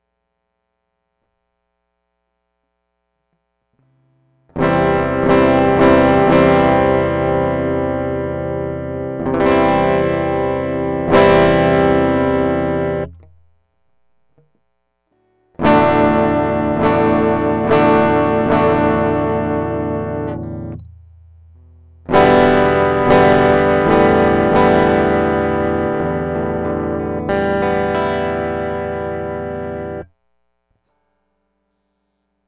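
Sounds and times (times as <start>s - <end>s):
guitar chords: 4.5s - 13.5s, 15.6s - 30.2s.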